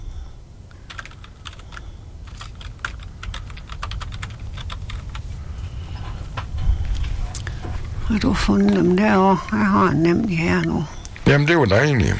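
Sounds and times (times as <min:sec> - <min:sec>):
steady low rumble: 0:00.0 - 0:11.6
typing on a computer keyboard: 0:00.9 - 0:05.2
speech: 0:08.1 - 0:12.1.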